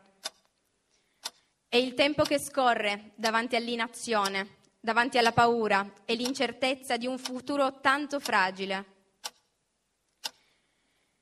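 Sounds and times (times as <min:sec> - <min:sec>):
clock ticking: 0:00.0 - 0:00.6, 0:01.2 - 0:02.6, 0:03.2 - 0:05.5, 0:06.1 - 0:08.6, 0:09.2 - 0:09.5, 0:10.2 - 0:10.5
speech: 0:01.7 - 0:08.9.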